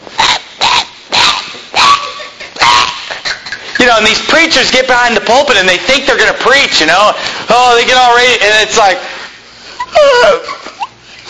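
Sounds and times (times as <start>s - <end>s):
person imitating a debarked dog's bark: 0.2s - 3.1s
speech: 3.9s - 9.1s, 10.0s - 10.6s.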